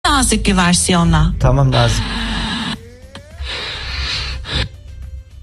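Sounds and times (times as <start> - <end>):
speech: 0.2 - 2.2
person imitating snoring: 1.8 - 4.7.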